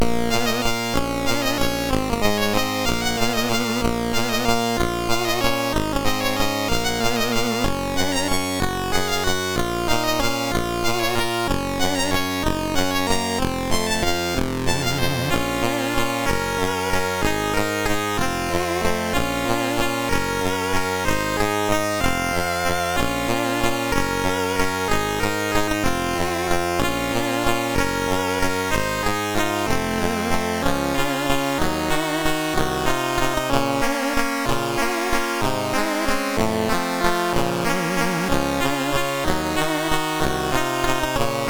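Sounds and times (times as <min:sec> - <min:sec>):
gothic chiptune music on a MOS6581R3 SID chip: 0:00.0 - 0:41.4.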